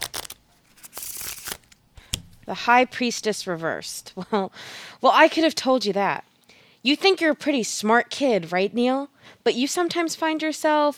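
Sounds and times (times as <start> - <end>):
deck of tarot cards being shuffled: 0.0 - 2.5
speech: 2.5 - 10.9.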